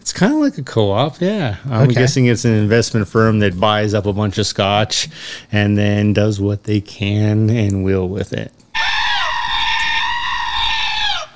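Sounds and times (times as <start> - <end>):
speech: 0.0 - 8.6
goat screaming: 8.8 - 11.3.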